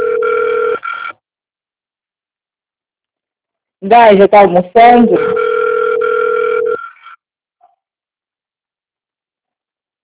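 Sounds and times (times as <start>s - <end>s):
ringback tone of an unanswered phone call: 0.0s - 1.1s, 5.2s - 7.0s
speech: 3.8s - 5.3s.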